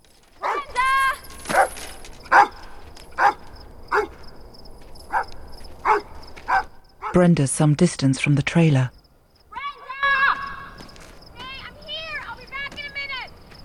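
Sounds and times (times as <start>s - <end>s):
dog barking at night: 0.4s - 0.8s, 1.4s - 4.3s, 5.1s - 7.3s
speech: 7.2s - 9.0s.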